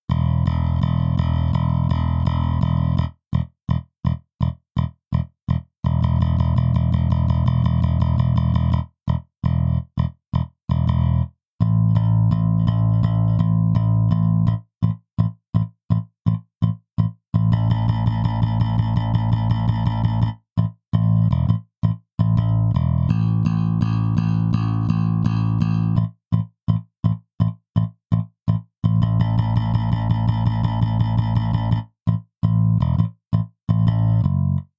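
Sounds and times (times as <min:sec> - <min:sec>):
bass guitar plucked with a pick: 0:00.0 - 0:34.7.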